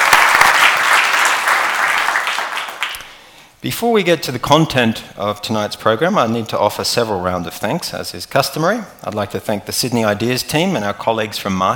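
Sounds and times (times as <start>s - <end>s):
room full of people applauding: 0.0s - 3.1s
speech: 3.6s - 11.7s.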